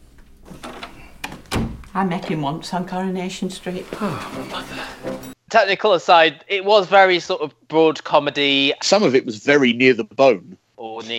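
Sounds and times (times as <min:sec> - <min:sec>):
door slamming shut: 0:00.5 - 0:01.8
speech: 0:02.0 - 0:11.1.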